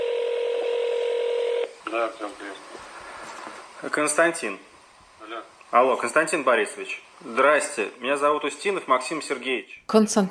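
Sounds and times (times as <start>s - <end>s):
buzzing telephone tone of a phone call: 0.0s - 1.8s
speech: 1.9s - 3.0s, 3.8s - 10.3s.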